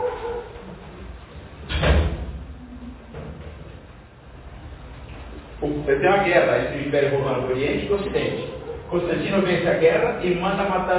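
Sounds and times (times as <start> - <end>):
heavy door banging shut with a short rattle: 1.6 - 2.5
speech: 5.8 - 10.9.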